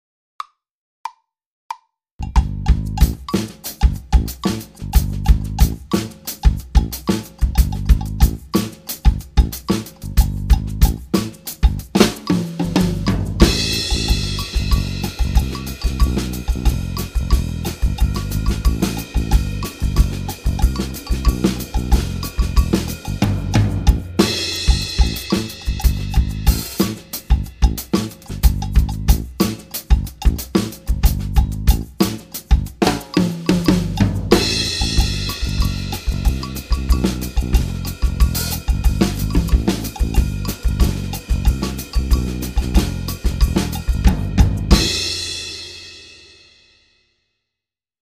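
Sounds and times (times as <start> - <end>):
partido samba music: 3.0 - 46.2.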